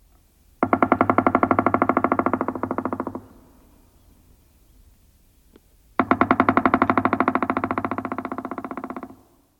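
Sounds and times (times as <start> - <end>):
pileated woodpecker drumming: 0.6 - 3.6, 6.0 - 9.4.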